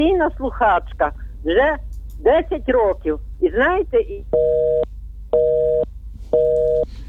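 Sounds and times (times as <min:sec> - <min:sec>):
speech: 0:00.0 - 0:04.7
low hum: 0:00.0 - 0:07.0
telephone busy signal after call drops: 0:04.4 - 0:04.8, 0:05.4 - 0:06.8.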